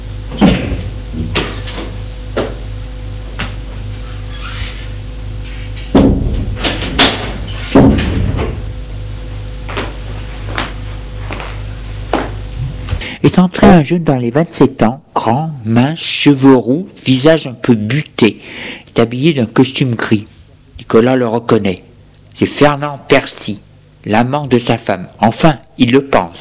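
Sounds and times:
steady low electrical hum: 0:00.0 - 0:26.3
office door creaking open: 0:00.3 - 0:02.0, 0:03.8 - 0:05.9, 0:06.5 - 0:08.6
office door thudding shut: 0:00.3 - 0:02.6, 0:05.9 - 0:08.6
knocks and clunks: 0:05.8 - 0:08.6
speech: 0:13.3 - 0:20.3, 0:20.9 - 0:26.3.

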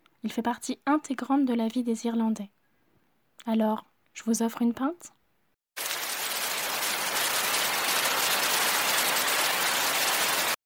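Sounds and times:
speech: 0:00.2 - 0:02.6, 0:03.4 - 0:05.2
heavy rain pouring down outside: 0:05.8 - 0:10.6.

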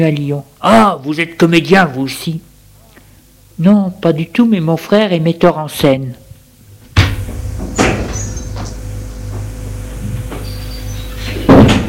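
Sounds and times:
speech: 0:00.0 - 0:02.5, 0:03.6 - 0:06.2
steady low hum: 0:00.0 - 0:11.8
firm thud: 0:06.9 - 0:08.2, 0:11.5 - 0:11.8
door opening with a sharp clunk: 0:07.0 - 0:10.6, 0:11.2 - 0:11.8.

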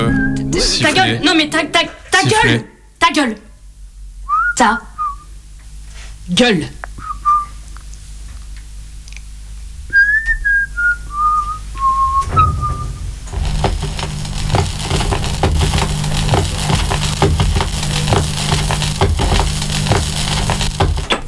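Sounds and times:
speech: 0:00.6 - 0:03.5, 0:04.6 - 0:04.9, 0:06.3 - 0:06.8
person whistling a short descending tune: 0:04.3 - 0:05.3, 0:07.0 - 0:07.6, 0:09.9 - 0:12.9
loud dense crackling and crushing noise: 0:12.2 - 0:21.2.

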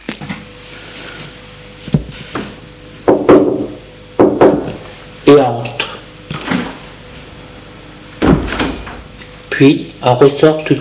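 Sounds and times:
maid knocking on a glass door in the hall of a house: 0:03.1 - 0:04.8
speech: 0:05.3 - 0:05.8, 0:09.6 - 0:10.7.

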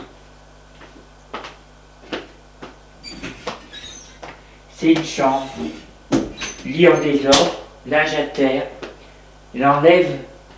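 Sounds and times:
bedroom door creaking as it swings: 0:03.0 - 0:04.4, 0:05.0 - 0:07.5
speech: 0:04.8 - 0:05.9, 0:06.6 - 0:08.8, 0:09.5 - 0:10.3.

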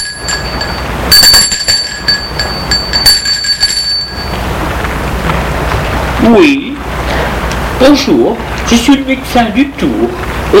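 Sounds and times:
bell rung at the gate of a house: 0:00.0 - 0:04.5
steady noisy background: 0:00.0 - 0:10.5
speech: 0:06.3 - 0:06.6, 0:07.8 - 0:10.5.

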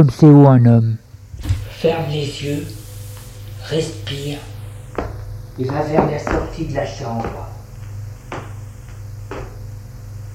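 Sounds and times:
speech: 0:00.0 - 0:02.8, 0:03.6 - 0:07.5
steady low hum: 0:00.9 - 0:10.3
unlocked bedroom door opening: 0:01.4 - 0:02.4.

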